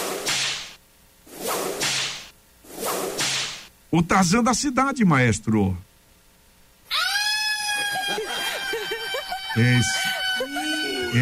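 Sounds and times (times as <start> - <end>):
whip cracks: 0.0 - 0.8, 1.4 - 3.7
speech: 3.9 - 5.9, 9.6 - 10.2
laughter: 7.3 - 11.2.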